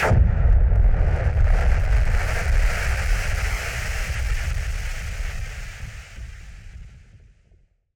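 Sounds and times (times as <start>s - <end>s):
filtered noise bomb boom: 0.0s - 4.6s.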